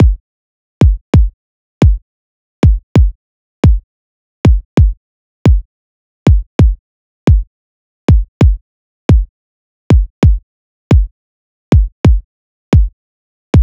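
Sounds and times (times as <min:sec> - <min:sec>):
132 BPM garage kick drum loop: 0:00.0 - 0:00.2, 0:00.8 - 0:02.0, 0:02.6 - 0:03.8, 0:04.5 - 0:05.7, 0:06.3 - 0:07.5, 0:08.1 - 0:09.3, 0:09.9 - 0:11.1, 0:11.7 - 0:12.2.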